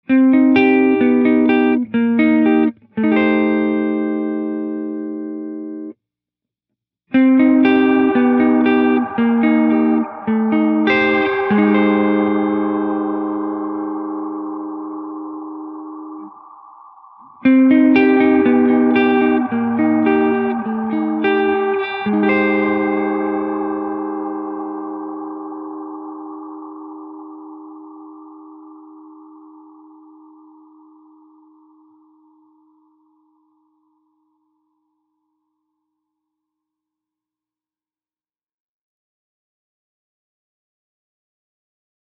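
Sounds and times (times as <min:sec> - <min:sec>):
dark ghostly sound with reverb: 0:00.4 - 0:05.3, 0:07.2 - 0:34.4.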